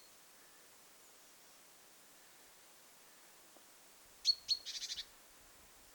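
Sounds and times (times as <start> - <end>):
young great tit calling: 4.3 - 5.1.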